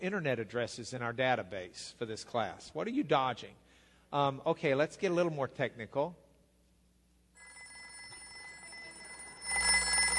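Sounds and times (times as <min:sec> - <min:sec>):
speech: 0:00.0 - 0:06.2
old rotary telephone bell ringing: 0:07.4 - 0:10.1.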